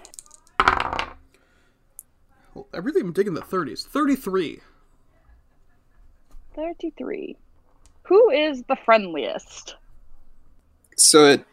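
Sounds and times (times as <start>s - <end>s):
dice rolled onto a surface: 0.0s - 1.2s
speech: 2.6s - 4.7s, 6.6s - 7.4s, 8.1s - 9.8s, 11.0s - 11.5s.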